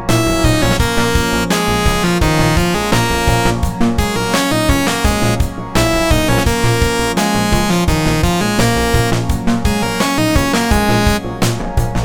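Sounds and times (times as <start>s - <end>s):
simple dotted eighth note rhythm: 0.1s - 11.9s.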